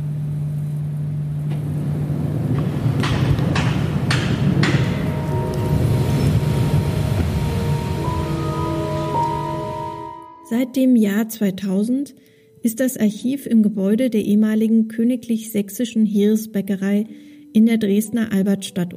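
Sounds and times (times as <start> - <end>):
loud mechanical hum of ventilation turbines: 0.0 - 14.0
high whining tones: 1.7 - 10.8
speech: 10.6 - 18.9.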